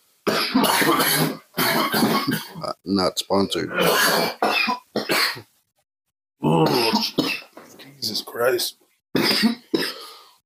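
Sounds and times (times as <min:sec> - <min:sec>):
harsh coughing after taking a hit: 0:00.3 - 0:02.7, 0:03.7 - 0:05.5, 0:06.6 - 0:07.6, 0:09.2 - 0:10.2
speech: 0:02.8 - 0:04.8, 0:06.4 - 0:07.3, 0:08.4 - 0:09.6.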